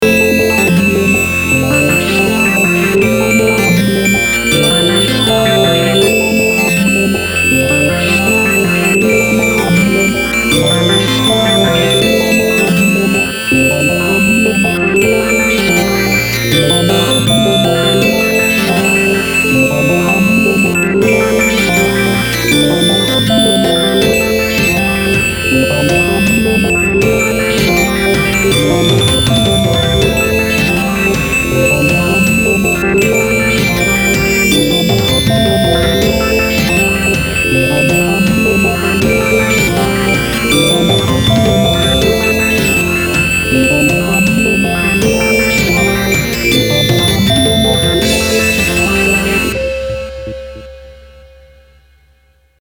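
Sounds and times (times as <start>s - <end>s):
synth texture: 0.0s - 50.8s.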